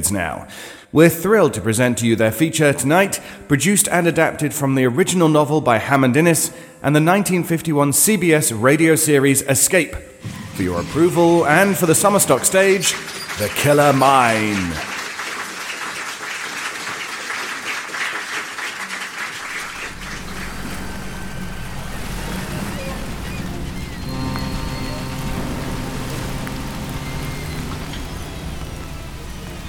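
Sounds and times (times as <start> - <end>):
speech: 0.0 - 15.0
faint sustained tones: 19.5 - 29.6
low rumbling drone: 19.5 - 29.6
steady rain falling on the coast of England: 19.5 - 29.6.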